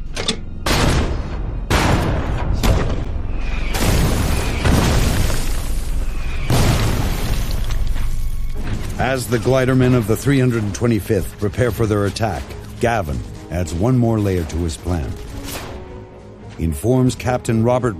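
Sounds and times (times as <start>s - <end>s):
American artillery barrage pounding German defensive positions: 0.6s - 7.8s
speech: 9.0s - 15.3s, 16.6s - 17.9s.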